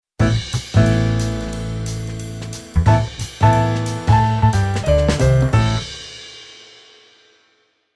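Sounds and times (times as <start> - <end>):
jazz piano on keyboard: 0.2 - 6.2.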